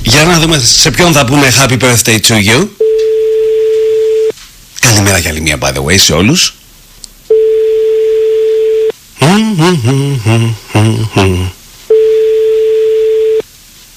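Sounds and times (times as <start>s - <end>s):
speech: 0.2s - 3.1s, 5.0s - 6.6s, 9.2s - 11.6s
steady telephone line tone: 2.8s - 4.3s, 7.3s - 8.9s, 11.9s - 13.4s.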